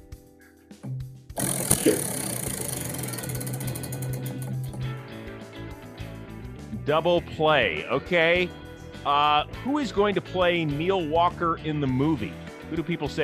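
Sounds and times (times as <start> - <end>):
speech: 0.8 - 2.2, 6.9 - 13.2
prize wheel spinning with ratcheting ticks: 1.4 - 5.0.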